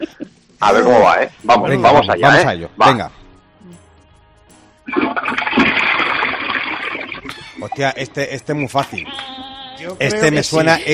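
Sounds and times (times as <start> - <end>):
speech: 0.0 - 3.2, 7.6 - 10.9
toilet cistern flushing: 4.9 - 7.4.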